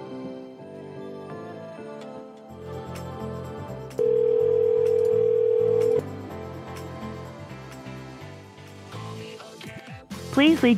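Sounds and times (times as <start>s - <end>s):
music: 0.0s - 10.7s
telephone tone after a call drops: 4.0s - 6.0s.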